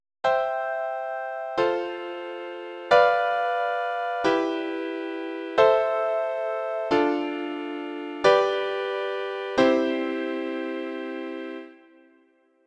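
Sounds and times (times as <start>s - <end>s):
major chord progression in a circle: 0.2s - 12.4s.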